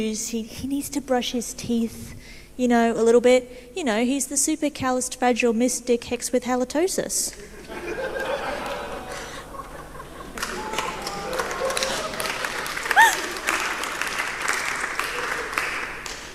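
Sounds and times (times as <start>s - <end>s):
speech: 0.0s - 8.2s
audience chuckles and murmurs: 7.4s - 13.8s
light applause from a small audience: 7.7s - 16.3s
person whooping: 10.4s - 13.8s.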